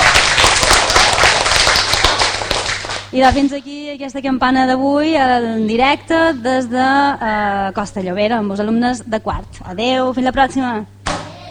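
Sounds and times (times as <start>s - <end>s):
schoolchildren applauding: 0.0s - 3.1s
speech: 3.1s - 11.0s.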